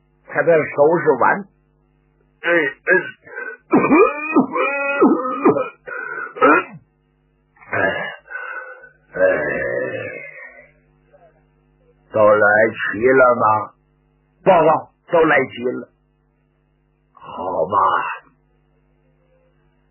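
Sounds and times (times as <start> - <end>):
speech: 0.4 - 1.6, 2.4 - 5.7, 12.2 - 13.8, 14.4 - 15.9, 17.6 - 18.1
performer imitating an old man's coughing and throat clearing: 2.4 - 6.8, 7.6 - 10.5
performer imitating a long noisy nose blow: 5.0 - 6.6, 8.3 - 9.0.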